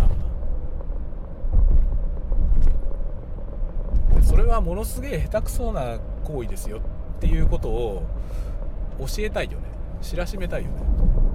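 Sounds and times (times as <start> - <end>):
car engine drone while driving: 0.0 - 11.3
car road noise while driving: 0.0 - 11.3
speech: 4.4 - 11.2.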